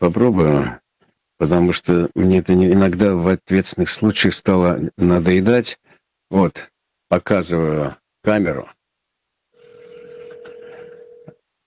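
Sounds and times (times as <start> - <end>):
speech: 0.0 - 0.8, 1.4 - 8.8
telephone dial tone: 9.6 - 11.4
telephone dialing clicks: 9.9 - 11.3.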